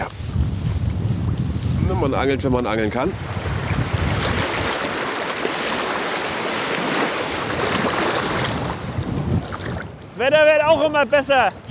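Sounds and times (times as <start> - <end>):
strong wind roaring across the microphone: 0.0 - 11.6
sea waves surging and breaking: 1.2 - 10.5
speech: 2.0 - 3.3, 10.2 - 11.6.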